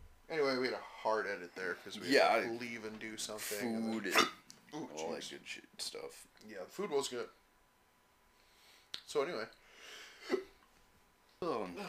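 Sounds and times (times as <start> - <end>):
speech: 0.3 - 7.4, 9.1 - 10.5, 11.4 - 11.8
single short sharp hiccup: 4.1 - 4.4.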